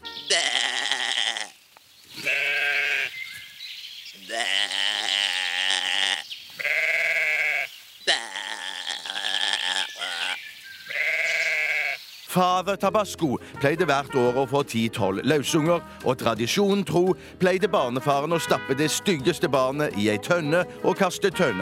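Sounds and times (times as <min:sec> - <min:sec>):
sheep bleating in a 1910 recording: 0:00.0 - 0:01.6, 0:02.2 - 0:03.2, 0:04.2 - 0:12.0
speech: 0:12.4 - 0:21.6.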